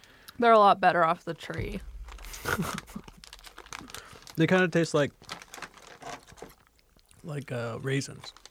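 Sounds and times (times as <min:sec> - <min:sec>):
speech: 0:00.4 - 0:02.8, 0:04.4 - 0:05.4, 0:07.2 - 0:08.4
plastic crinkling: 0:01.5 - 0:08.4
snack package being torn open: 0:02.1 - 0:07.2, 0:08.2 - 0:08.4.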